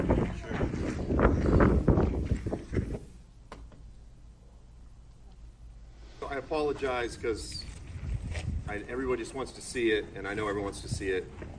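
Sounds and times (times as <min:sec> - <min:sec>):
strong wind buffeting a microphone outdoors: 0:00.0 - 0:03.2, 0:07.1 - 0:09.5, 0:10.3 - 0:11.5
speech: 0:06.5 - 0:07.7, 0:08.7 - 0:11.5.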